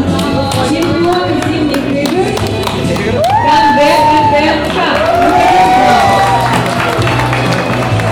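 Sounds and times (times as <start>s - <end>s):
large crowd applauding and cheering: 0.1s - 8.1s
whoops and shouts: 3.2s - 7.0s.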